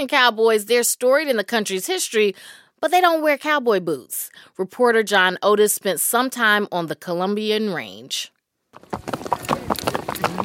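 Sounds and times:
speech: 0:00.0 - 0:10.3
horse hooves clip-clopping while driving cattle: 0:08.7 - 0:10.4.

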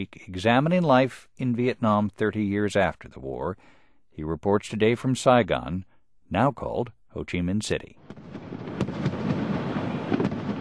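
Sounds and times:
speech: 0:00.0 - 0:09.1
fireworks bangs and pops over a river during a celebration: 0:08.0 - 0:10.5.

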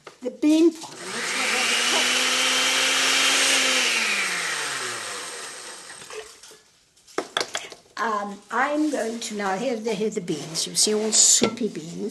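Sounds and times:
speech: 0:00.2 - 0:01.0, 0:08.0 - 0:12.0
old electric blender blending chiles and garlic: 0:00.9 - 0:06.4.

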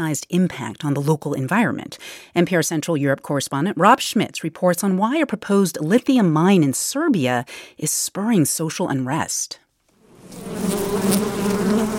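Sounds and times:
speech: 0:00.0 - 0:09.6, 0:10.3 - 0:11.9
angry bees swarming as a hive cover is lifted: 0:10.0 - 0:11.9.

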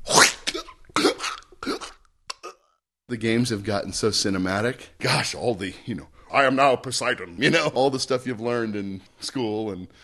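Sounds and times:
male voice actor performing a throat-slitting death sound for a video game: 0:00.0 - 0:02.8
speech: 0:03.1 - 0:10.0.

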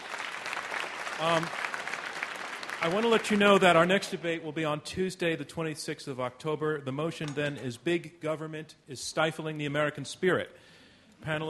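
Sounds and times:
audience applause at a live debate event: 0:00.0 - 0:03.9
speech: 0:01.2 - 0:01.6, 0:02.8 - 0:11.4.

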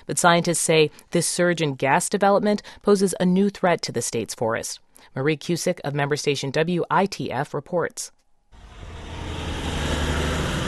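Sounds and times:
speech: 0:00.0 - 0:08.2
heavy truck traffic on a mountain road: 0:08.6 - 0:10.6.

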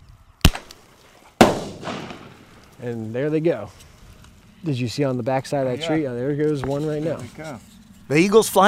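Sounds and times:
bird-banger firecracker shot from a two-barrel cap-gun launcher exploding in midair: 0:01.4 - 0:02.7
speech: 0:02.8 - 0:03.9, 0:04.6 - 0:08.6.

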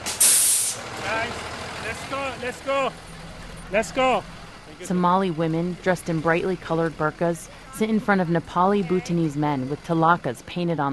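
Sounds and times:
school bus air brakes hissing: 0:00.0 - 0:00.9
speech: 0:01.2 - 0:10.9.

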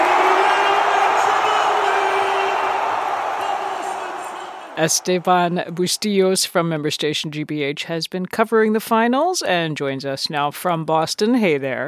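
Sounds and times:
packed arena crowd cheering at an NBA Finals basketball game: 0:00.0 - 0:06.2
speech: 0:04.8 - 0:11.8.

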